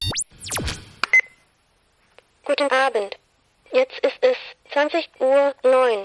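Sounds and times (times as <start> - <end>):
swooping electronic tones: 0.0 - 1.4
speech: 2.6 - 6.0.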